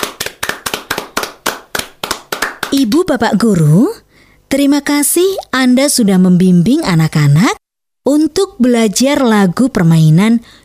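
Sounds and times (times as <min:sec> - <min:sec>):
applause for a child after a sung children's game song: 0:00.0 - 0:03.1
speech: 0:02.7 - 0:10.6.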